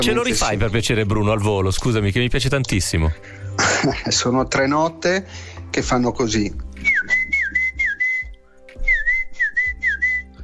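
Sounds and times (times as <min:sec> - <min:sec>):
speech: 0:00.0 - 0:06.7
person whistling a rising-then-falling call: 0:06.8 - 0:10.4.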